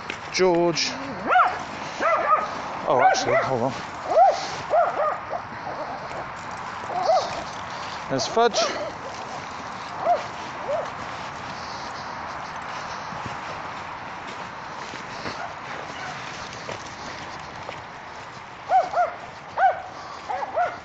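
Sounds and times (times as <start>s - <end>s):
speech: 0.4s - 1.4s, 2.9s - 3.9s, 8.1s - 8.8s
dog on a walk barking in the distance: 0.9s - 6.3s, 6.9s - 11.1s, 15.1s - 17.1s, 18.6s - 20.8s.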